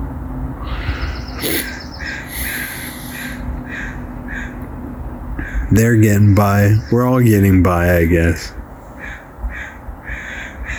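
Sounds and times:
birds cawing in a backyard: 0:00.6 - 0:04.7, 0:05.4 - 0:05.7, 0:09.0 - 0:10.7
speech: 0:05.7 - 0:08.6.

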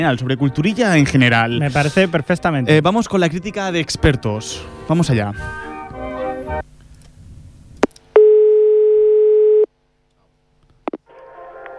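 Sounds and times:
speech: 0:00.0 - 0:05.6
music: 0:00.0 - 0:06.7, 0:10.9 - 0:11.7
telephone ringback tone beep on an outgoing call: 0:08.2 - 0:09.7.

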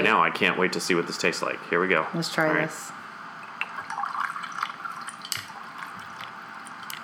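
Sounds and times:
speech: 0:00.0 - 0:03.0
strawberry fizz drink pouring into glasses: 0:03.4 - 0:07.0.

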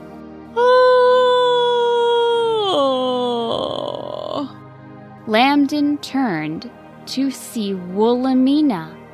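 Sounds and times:
person performing a long drawn-out yawn: 0:00.6 - 0:04.5
speech: 0:05.3 - 0:09.0.

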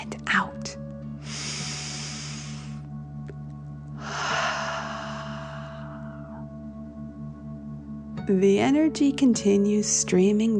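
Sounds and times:
deep breath in through the nose and out through the mouth: 0:01.2 - 0:02.9, 0:04.0 - 0:06.7
steady low hum: 0:03.8 - 0:08.1
speech: 0:08.3 - 0:10.5.

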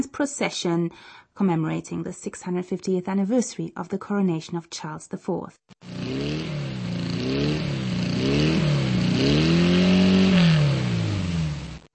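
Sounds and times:
speech: 0:00.0 - 0:06.3
Porsche sports car engine revving: 0:05.8 - 0:11.9.

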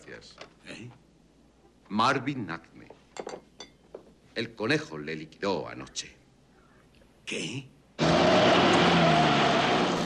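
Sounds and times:
speech: 0:00.1 - 0:01.1, 0:01.9 - 0:03.4, 0:04.4 - 0:06.2, 0:07.3 - 0:08.6
car engine roaring and speeding off: 0:08.0 - 0:10.0.

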